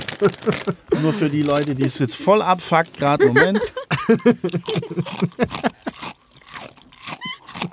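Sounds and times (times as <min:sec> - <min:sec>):
crunching and chewing of a crisp snack: 0:00.0 - 0:02.0, 0:04.4 - 0:07.7
laughter: 0:00.1 - 0:01.6, 0:03.0 - 0:06.0
speech: 0:00.2 - 0:06.2.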